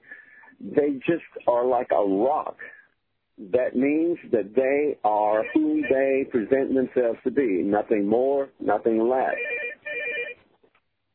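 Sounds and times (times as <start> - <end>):
speech: 0.6 - 2.8, 3.4 - 9.6
telephone electronic ring tone: 5.4 - 6.0, 9.3 - 10.4.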